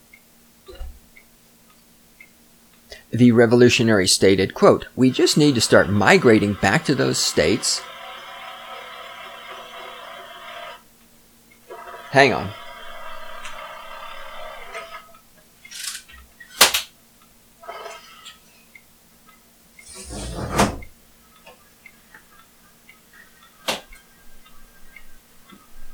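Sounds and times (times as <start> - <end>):
speech: 3.1 - 7.9, 12.1 - 12.6
window closing clunks and knocks: 19.9 - 20.9.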